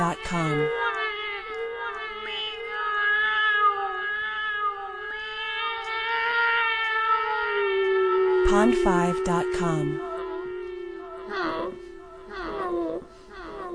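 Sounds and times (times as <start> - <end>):
speech: 0.1 - 0.8, 8.4 - 10.1
hungry cats meowing with wailing cries: 0.2 - 13.7.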